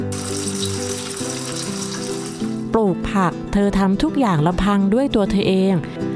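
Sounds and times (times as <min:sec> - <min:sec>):
food frying in a pan: 0:00.0 - 0:02.7
speech: 0:02.8 - 0:06.1.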